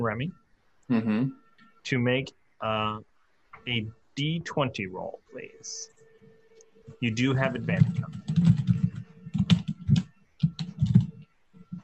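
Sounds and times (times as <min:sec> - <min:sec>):
speech: 0:00.0 - 0:05.9, 0:06.9 - 0:08.2
rapid typing on a computer keyboard: 0:07.5 - 0:11.8.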